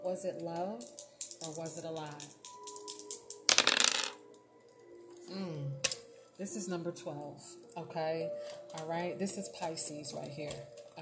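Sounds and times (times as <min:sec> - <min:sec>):
speech: 0:00.2 - 0:02.4, 0:05.3 - 0:11.0
dice tumbling across a hard surface: 0:00.6 - 0:04.3.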